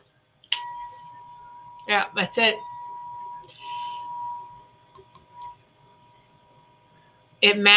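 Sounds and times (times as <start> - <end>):
steady high-pitched 963 hertz pure tone: 1.2 - 4.7
speech: 1.9 - 2.7, 7.4 - 7.7.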